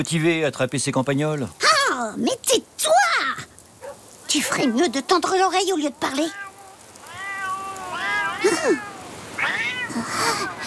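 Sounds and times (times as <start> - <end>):
speech: 0.0 - 3.5, 4.3 - 6.4, 8.4 - 8.9
several cats meowing in overlapping drawn-out calls: 5.0 - 10.6.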